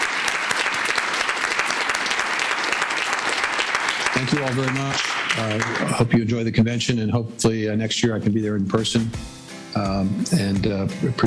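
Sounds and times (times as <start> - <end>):
audience applause at a convention: 0.0 - 6.3
speech: 4.2 - 11.2.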